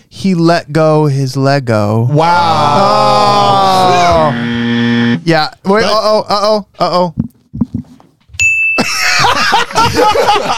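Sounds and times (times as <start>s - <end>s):
speech: 0.2s - 3.1s, 4.2s - 7.2s, 9.9s - 10.5s
bright bell ding: 8.4s - 9.0s
laughter: 8.8s - 10.5s.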